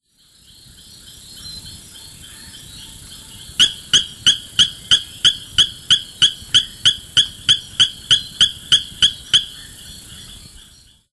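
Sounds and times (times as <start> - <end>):
Gephyromantis sculpturatus calling: 2.2 - 10.8.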